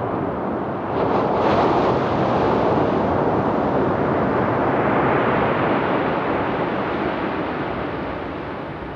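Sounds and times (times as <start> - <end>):
calm ocean surf rolling onto the sandy beach of Isohama Beach in Yamamoto town: 0.0 - 8.9.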